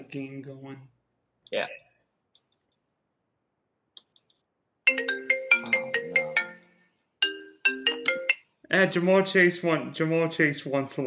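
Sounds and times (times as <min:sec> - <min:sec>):
speech: 0:00.1 - 0:01.8, 0:08.7 - 0:11.0
phone ringtone from incoming call: 0:04.9 - 0:08.6.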